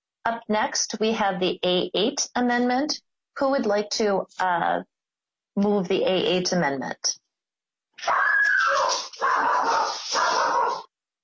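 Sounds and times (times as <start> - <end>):
speech: 0.2 - 4.9, 5.6 - 7.2, 8.0 - 10.3
dog whimpering and barking: 8.1 - 10.8.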